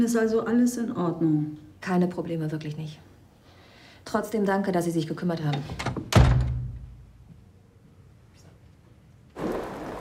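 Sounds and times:
speech: 0.0s - 3.1s, 4.0s - 6.2s
front door shutting with a heavy thud: 5.6s - 6.7s.

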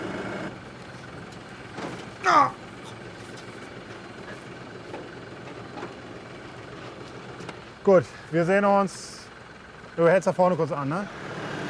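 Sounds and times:
blue tractor idling on Hiddensee: 0.0s - 11.6s
person exclaiming: 2.2s - 2.6s
speech: 2.3s - 2.6s, 7.9s - 9.2s, 10.0s - 11.2s.

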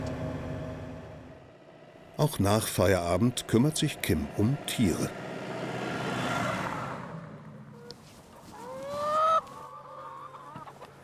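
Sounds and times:
speech: 2.2s - 5.2s
flock of free-range chickens clucking and squawking at a mobile henhouse on a meadow: 6.1s - 7.0s, 7.7s - 11.0s
broad rustling of chickens: 7.8s - 9.7s.

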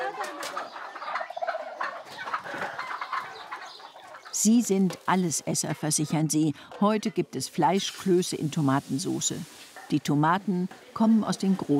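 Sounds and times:
turkeys gobbling in a flock kept by nuns: 0.0s - 6.1s
chickens clucking in a flock kept by nuns: 0.0s - 11.7s
speech: 4.4s - 11.7s.

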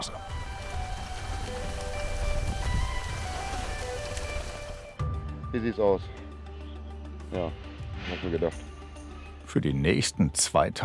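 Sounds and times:
rain pattering on a surface: 0.0s - 5.0s
speech: 5.5s - 6.2s, 7.3s - 8.7s, 9.5s - 10.8s.

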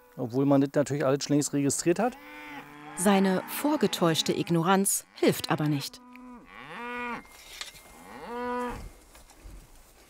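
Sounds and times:
speech: 0.2s - 6.0s
cattle mooing: 2.1s - 7.3s, 7.9s - 8.9s.

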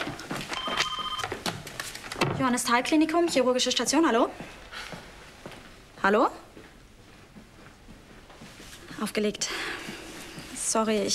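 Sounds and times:
telephone ringing with a steady electronic tone: 0.6s - 1.4s
speech: 2.4s - 4.6s, 6.0s - 6.4s, 9.0s - 9.6s, 10.7s - 11.1s.

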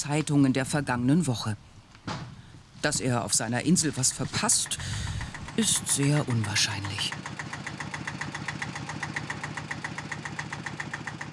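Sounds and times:
speech: 0.0s - 1.7s, 2.8s - 7.4s
diesel tractor engine idling: 3.0s - 11.3s.

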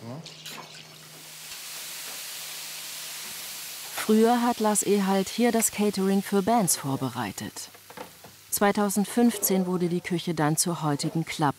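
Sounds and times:
lamb jus poured into a braising pot of roasted vegetables and tomato paste: 0.0s - 11.5s
speech: 0.2s - 0.5s, 4.1s - 7.8s, 8.6s - 11.5s.

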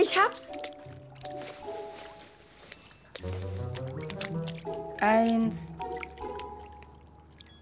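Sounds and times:
speech: 0.0s - 2.0s, 5.0s - 5.9s
hands scooping silverfish out of water: 0.0s - 7.6s.

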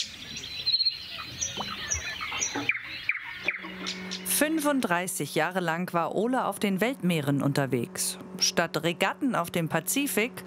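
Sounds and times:
nightingale singing at night in quiet natural surroundings: 0.0s - 4.3s
speech: 4.4s - 10.4s.

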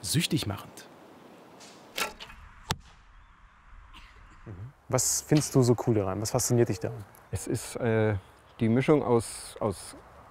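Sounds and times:
speech: 0.0s - 0.9s, 4.9s - 10.0s
arrow loosed from a bow: 1.6s - 3.1s.

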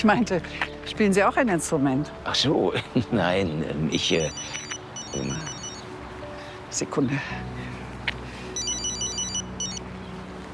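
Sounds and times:
speech: 0.0s - 5.5s, 6.7s - 7.8s
telephone ringing with an electronic ringtone: 4.2s - 5.8s, 8.6s - 9.8s.

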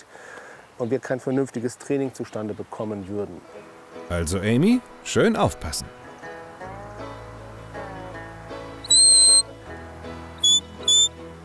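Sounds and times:
speech: 0.8s - 6.0s
shrill shepherd's whistle commands to a sheepdog: 8.8s - 9.5s, 10.4s - 11.2s.

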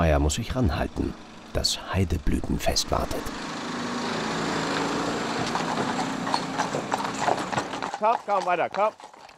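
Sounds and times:
speech: 0.1s - 3.5s, 8.0s - 9.0s
four driven horses' hooves clip-clopping: 4.0s - 9.3s.

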